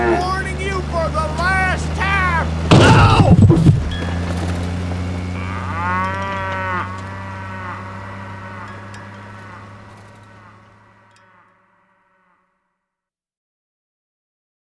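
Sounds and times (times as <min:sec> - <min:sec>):
cow lowing: 0:00.0 - 0:04.0, 0:05.0 - 0:12.8
steady low drone: 0:00.0 - 0:11.6.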